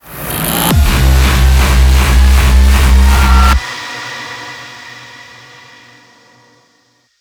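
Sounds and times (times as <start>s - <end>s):
cultist base ambience: 0.7s - 3.6s.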